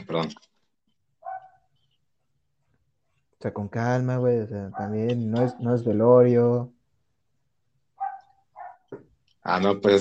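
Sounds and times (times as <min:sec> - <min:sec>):
speech: 0:00.1 - 0:00.5, 0:03.4 - 0:06.8, 0:08.9 - 0:09.9
small dog barking: 0:01.2 - 0:01.7, 0:08.0 - 0:08.9.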